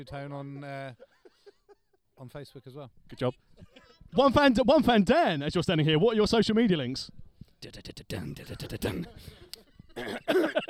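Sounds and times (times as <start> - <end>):
speech: 0.0 - 1.1, 2.2 - 9.4, 10.0 - 10.6
person coughing in harsh bursts: 10.0 - 10.6.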